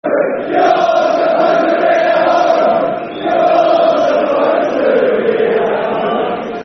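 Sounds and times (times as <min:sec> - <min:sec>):
football crowd chanting: 0:00.0 - 0:06.6.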